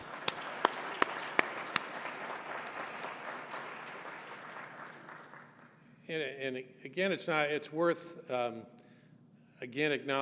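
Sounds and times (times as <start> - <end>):
crowd applauding: 0.0 - 5.8
sharp claps: 0.0 - 5.8
speech: 6.1 - 8.8, 9.6 - 10.1.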